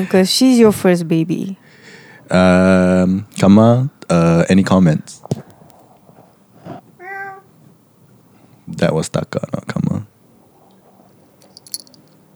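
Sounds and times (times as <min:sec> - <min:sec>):
speech: 0:00.0 - 0:01.7, 0:02.3 - 0:05.3, 0:08.7 - 0:10.1
cat meowing: 0:06.6 - 0:07.6
small bell on a cat jingling: 0:11.4 - 0:12.2.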